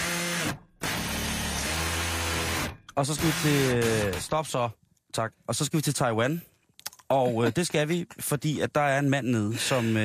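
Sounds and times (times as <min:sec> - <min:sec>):
power drill whirring: 0:00.0 - 0:04.3
speech: 0:03.0 - 0:06.5, 0:07.1 - 0:10.0.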